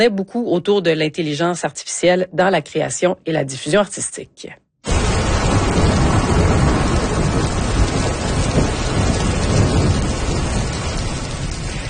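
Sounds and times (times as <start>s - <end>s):
speech: 0.0s - 4.6s
distant thunderstorm rumbling: 4.9s - 11.8s
steady loud rainfall: 4.9s - 11.8s.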